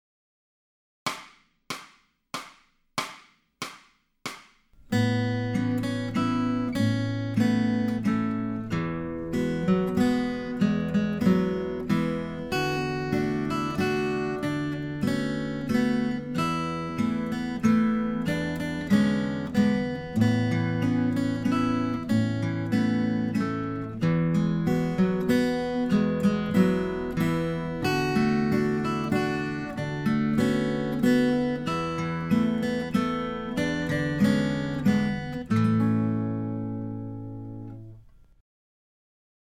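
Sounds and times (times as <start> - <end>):
acoustic guitar accompaniment at Grade 4 level: 4.7 - 38.3.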